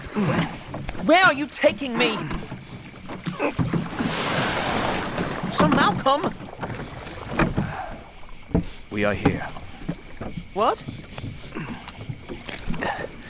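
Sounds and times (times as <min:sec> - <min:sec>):
irregular oar-like strokes: 0:00.0 - 0:13.2
water sloshing and splashing around a small rowing boat: 0:00.0 - 0:13.2
speech: 0:00.2 - 0:02.4, 0:03.4 - 0:03.7, 0:05.5 - 0:06.4, 0:09.0 - 0:09.6, 0:10.6 - 0:10.9.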